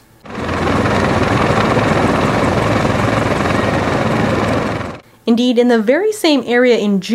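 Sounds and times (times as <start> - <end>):
helicopter flying overhead with thumping rotor blades: 0.0 - 5.0
speech: 5.3 - 7.1.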